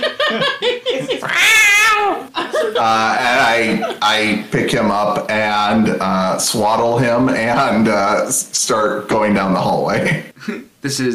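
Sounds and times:
laughter: 0:00.0 - 0:04.5
person imitating a kitten meowing: 0:01.2 - 0:02.3
speech: 0:02.8 - 0:11.1.

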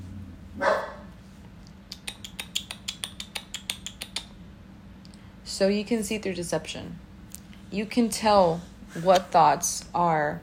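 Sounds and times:
low hum: 0:00.0 - 0:10.4
dog barking: 0:00.6 - 0:01.1
speech: 0:05.6 - 0:07.1, 0:07.7 - 0:10.4.

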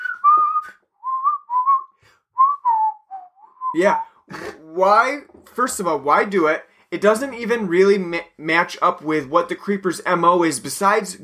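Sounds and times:
person whistling a tune: 0:00.0 - 0:04.2
speech: 0:03.7 - 0:11.2.

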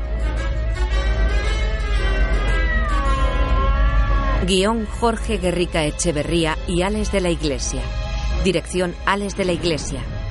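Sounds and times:
steady low droning background: 0:00.0 - 0:10.3
cat meowing: 0:02.2 - 0:04.4
speech: 0:04.5 - 0:10.2.

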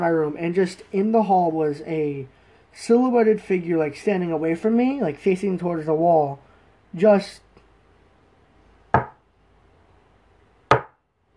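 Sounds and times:
speech: 0:00.0 - 0:07.4
sharp solid knocks on a wooden desk: 0:09.0 - 0:09.2, 0:10.7 - 0:11.0.

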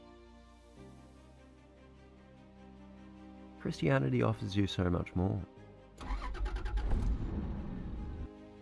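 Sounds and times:
speech: 0:03.6 - 0:05.6
luxury car engine starting and revving: 0:06.0 - 0:08.3.

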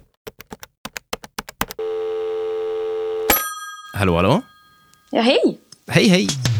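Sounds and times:
phone ringing tone: 0:01.8 - 0:05.4
speech: 0:04.0 - 0:04.5, 0:05.1 - 0:06.5.

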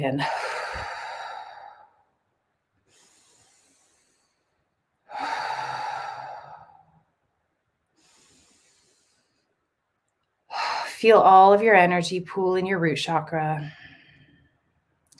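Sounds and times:
speech: 0:00.0 - 0:00.4, 0:11.0 - 0:13.8
deep breaths in through the nose and out through the mouth during guided meditation: 0:00.2 - 0:02.2, 0:02.8 - 0:07.2, 0:07.9 - 0:09.7.

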